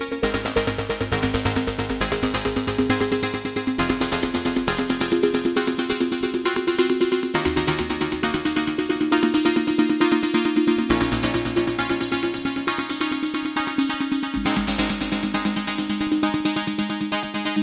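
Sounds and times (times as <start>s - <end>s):
Solaris synthesizer sequence with high-pass filter: 0.1s - 17.5s.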